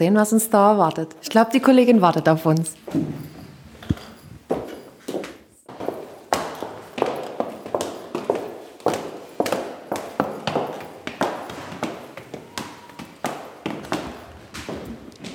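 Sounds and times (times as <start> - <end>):
speech: 0.0 - 3.3
footsteps climbing a staircase: 2.7 - 15.3.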